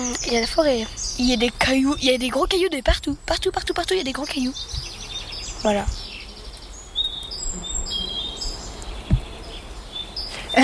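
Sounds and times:
several birds chirping and trilling in open air: 0:00.0 - 0:10.6
speech: 0:00.1 - 0:05.0, 0:05.6 - 0:06.1
brief thump: 0:09.0 - 0:09.3.

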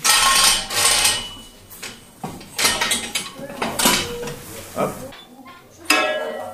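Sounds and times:
heavy machinery mechanism lowering a furnace column, clanking and scraping: 0:00.0 - 0:05.1.

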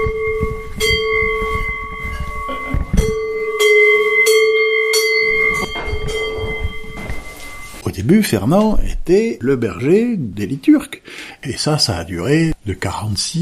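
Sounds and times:
church bells ringing in a peal: 0:00.0 - 0:07.8
speech: 0:08.1 - 0:13.3.

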